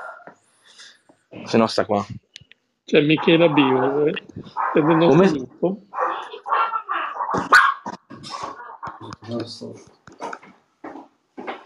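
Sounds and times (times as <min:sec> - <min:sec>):
speech: 0:01.4 - 0:02.2, 0:02.9 - 0:05.9, 0:09.3 - 0:10.0
dog barking: 0:03.2 - 0:09.0.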